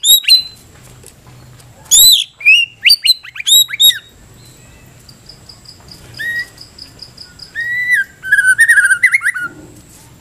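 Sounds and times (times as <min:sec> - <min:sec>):
white-rumped shama whistling: 0:00.0 - 0:00.6, 0:01.9 - 0:04.9, 0:06.2 - 0:06.6, 0:07.2 - 0:09.5.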